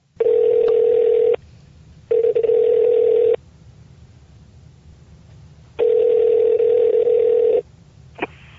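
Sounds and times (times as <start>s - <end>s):
telephone line electronic tones: 0.2s - 1.4s, 2.1s - 3.4s, 5.8s - 7.6s.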